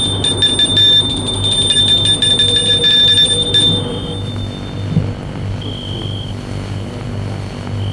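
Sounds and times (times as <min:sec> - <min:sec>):
electric doorbell ringing in a rapid buzzing trill: 0:00.0 - 0:06.3
low hum: 0:00.0 - 0:07.9.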